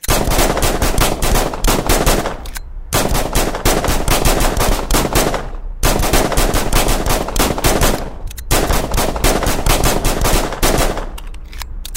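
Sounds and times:
rapid gunshots from police officers firing on a hill: 0.0s - 11.2s.

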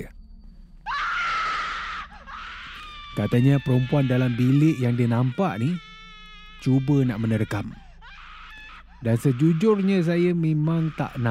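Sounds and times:
girl screaming in terror: 0.9s - 6.6s, 8.0s - 10.0s
speech: 3.2s - 5.9s, 6.6s - 7.8s, 9.0s - 11.2s.

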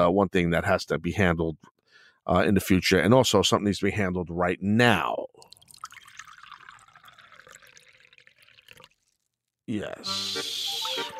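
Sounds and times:
speech: 0.0s - 5.4s, 9.7s - 11.1s
water pouring into a glass for a drink: 5.4s - 9.5s.

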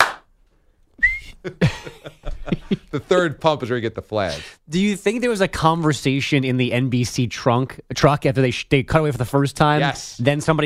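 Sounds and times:
voice imitating a referee's whistle: 1.0s - 1.4s
speech: 1.4s - 2.1s, 2.7s - 10.6s
laughter: 1.4s - 3.1s.

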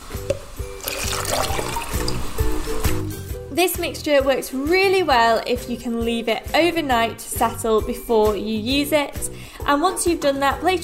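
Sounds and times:
water trickling and splashing while mixed with washing up liquid and glycerin: 0.7s - 2.9s
speech: 3.6s - 10.8s.

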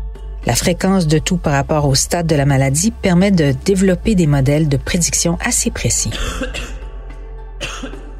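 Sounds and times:
speech: 0.4s - 6.7s
person coughing harshly: 6.1s - 6.8s, 7.6s - 8.1s.

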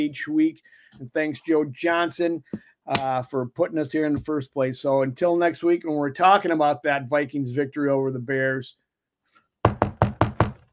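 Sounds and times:
speech: 0.0s - 8.8s
knuckles knocking on wood: 9.6s - 10.7s.

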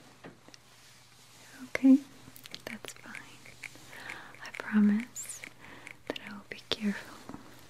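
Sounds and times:
soft whispering voice: 1.4s - 7.4s
speech: 1.8s - 2.1s
scissors snipping hair in a salon role-play: 2.4s - 7.0s.

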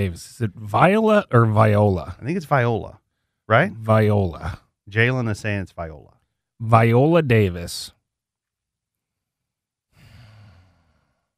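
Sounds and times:
speech: 0.0s - 8.0s
snort-like snore into microphone: 10.0s - 11.3s.

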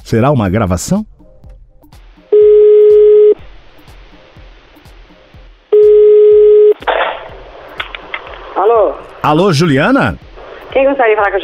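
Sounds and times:
speech: 0.1s - 1.1s, 8.8s - 11.4s
telephone line tones while calling again: 2.3s - 3.4s, 5.8s - 6.8s.

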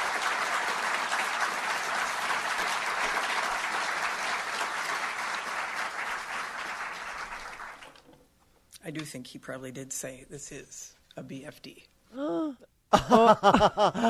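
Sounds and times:
crowd applause: 0.0s - 8.1s
speech: 8.9s - 14.0s
laughter: 12.9s - 14.0s.

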